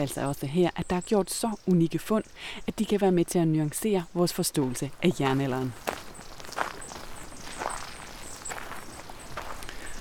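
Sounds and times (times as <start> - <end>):
speech: 0.0 - 6.1
footsteps walking from a small forest edge onto open grassy fields in Midtjylland: 4.6 - 9.9.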